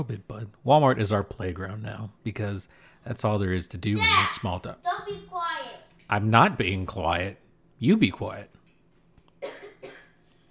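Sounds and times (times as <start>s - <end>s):
speech: 0.0s - 8.6s
sick person coughing open-mouthed in an office: 9.4s - 10.2s.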